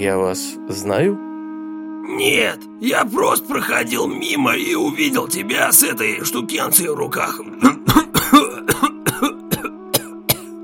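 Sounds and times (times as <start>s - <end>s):
speech: 0.0s - 1.3s, 2.0s - 7.8s
old man coughing fit: 7.5s - 10.6s.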